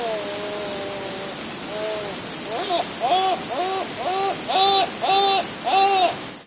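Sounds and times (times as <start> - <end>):
large-billed gull Larus pacificus calling: 1.8 - 6.4.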